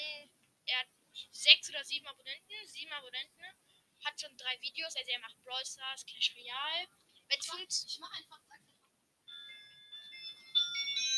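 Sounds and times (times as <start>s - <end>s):
speech: 1.7s - 8.7s
electronic phone ringtone from an incoming call: 9.2s - 11.1s.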